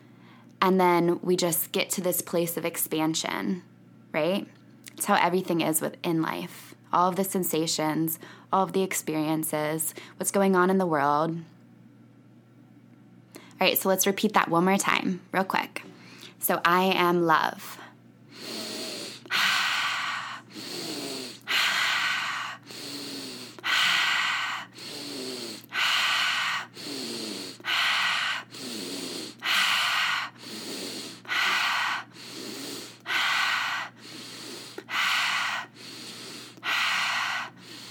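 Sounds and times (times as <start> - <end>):
speech: 0.6 - 11.5, 13.6 - 17.8
loud deep inhales and exhales into the belly and chest: 17.8 - 37.8.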